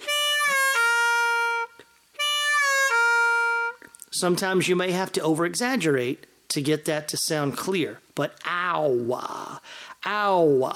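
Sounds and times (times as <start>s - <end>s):
harmonica lick with four-hole draw bend and three-hole draw half-step bend: 0.0s - 4.1s
speech: 4.2s - 9.4s, 10.1s - 10.7s.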